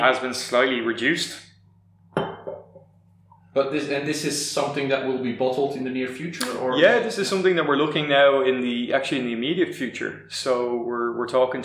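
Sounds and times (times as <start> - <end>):
speech: 0.0 - 1.5, 3.6 - 11.6
glasses clinking in a toast: 2.2 - 2.8.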